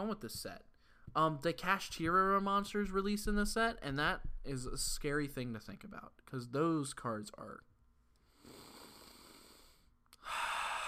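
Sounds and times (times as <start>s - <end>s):
speech: 0.0s - 7.7s
breathing into a microphone: 0.7s - 1.2s, 8.2s - 10.8s.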